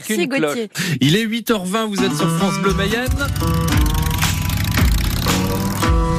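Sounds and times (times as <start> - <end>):
speech: 0.0 - 3.7
motorcycle engines roaring and revving in a show jingle: 3.1 - 6.1.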